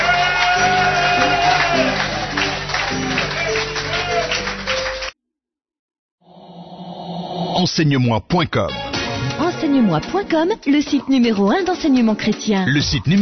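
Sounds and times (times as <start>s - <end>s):
large audience shouting and cheering joyfully: 0.0s - 5.0s
speech: 7.6s - 13.1s.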